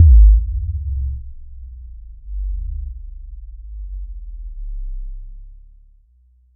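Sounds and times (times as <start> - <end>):
deep sub bass thump: 0.0 - 5.1.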